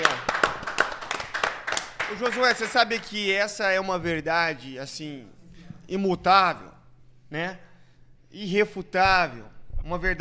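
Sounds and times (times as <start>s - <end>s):
small group hand clapping in a church: 0.0s - 3.0s
speech: 2.1s - 6.7s, 7.3s - 7.7s, 8.3s - 10.1s.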